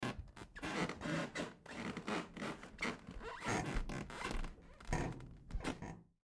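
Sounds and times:
wooden basement floor creaking: 0:00.0 - 0:06.0.

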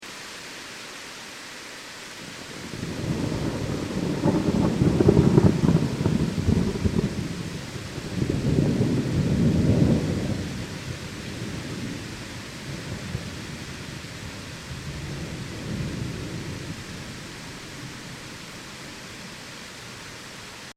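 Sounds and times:
rain in a storm: 0:00.0 - 0:20.7
enormous thunder in a storm: 0:02.6 - 0:19.1.

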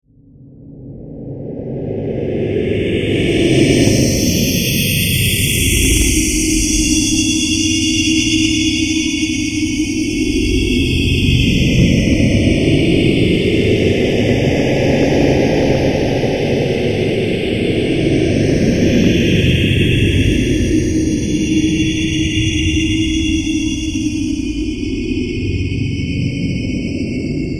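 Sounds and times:
evil alien presence moving, sci-fi sound effect: 0:00.2 - 0:27.5.

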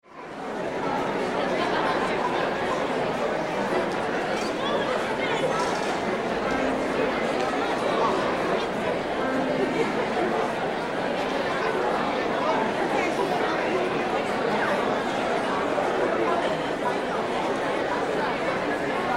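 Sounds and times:
church ambience before service: 0:00.3 - 0:19.1
piano notes in background of church: 0:05.1 - 0:13.4.

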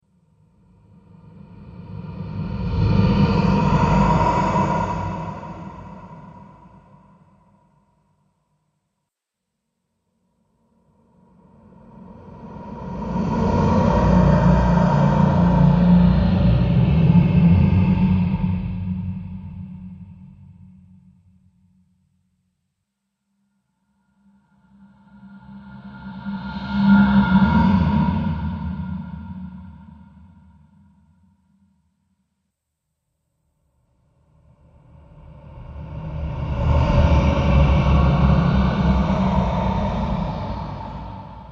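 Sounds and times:
ghostly horror sound: 0:00.6 - 0:07.7, 0:11.1 - 0:20.6, 0:24.5 - 0:30.7, 0:34.2 - 0:41.5.

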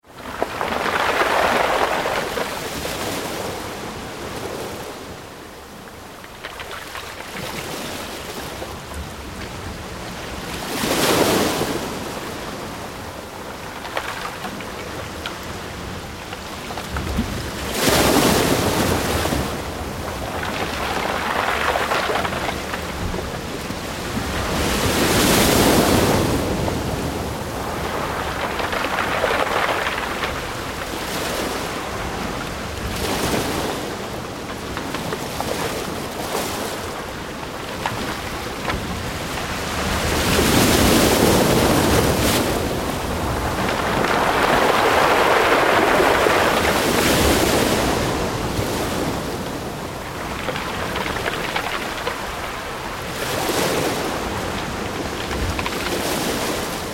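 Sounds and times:
medium sea surf onto a pebble beach: 0:00.0 - 0:56.9
close rolling pebbles on a beach: 0:13.2 - 0:56.9.

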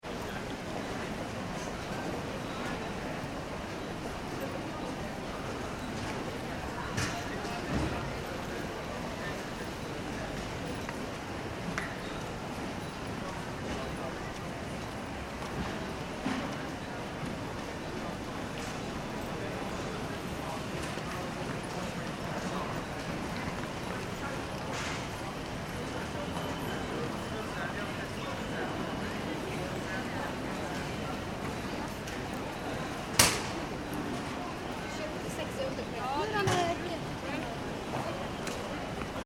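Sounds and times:
airport check-in hall ambience: 0:00.0 - 0:39.2.

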